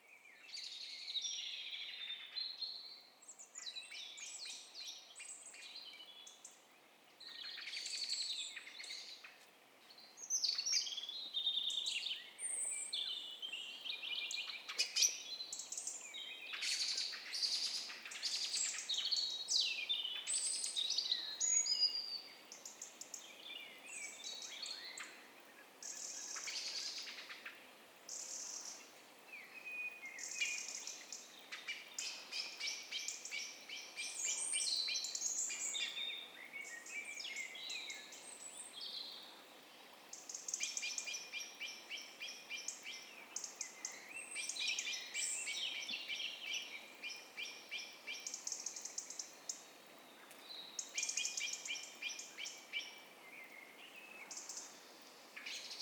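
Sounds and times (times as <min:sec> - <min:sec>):
night birds calling: 0:00.0 - 0:55.8.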